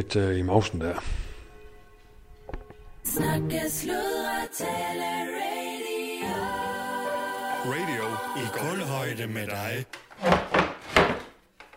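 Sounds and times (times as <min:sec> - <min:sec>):
speech: 0:00.0 - 0:01.3, 0:03.1 - 0:05.5, 0:06.2 - 0:06.7, 0:07.6 - 0:10.4
wooden chair creaking and scraping: 0:09.9 - 0:11.7.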